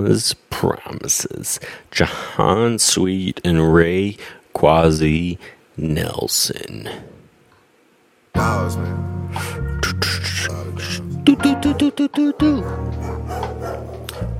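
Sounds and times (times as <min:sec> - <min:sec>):
speech: 0:00.0 - 0:07.2, 0:08.4 - 0:10.1, 0:11.3 - 0:13.4
bass-heavy music track with vocals: 0:08.4 - 0:13.0
dogs barking: 0:11.4 - 0:14.3.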